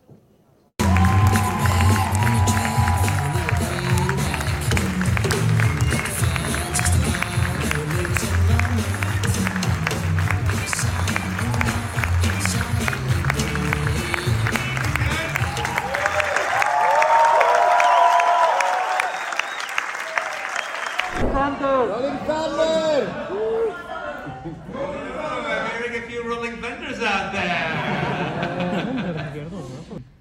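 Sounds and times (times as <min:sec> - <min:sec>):
scattered whoops and shouts from a film screening crowd: 0:00.8 - 0:04.3, 0:15.4 - 0:19.4, 0:23.2 - 0:24.0
packed crowd applauding at a film screening: 0:00.8 - 0:21.4
packed crowd cheering at a film screening: 0:00.8 - 0:24.2
laughter: 0:22.7 - 0:25.4, 0:27.3 - 0:30.0.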